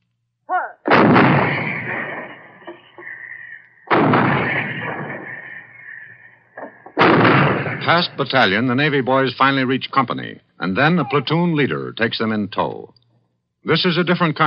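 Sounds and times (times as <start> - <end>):
155 mm artillery guns shelling enemy installations at the front: 0.9 - 8.8
speech: 7.9 - 13.0, 13.6 - 14.4.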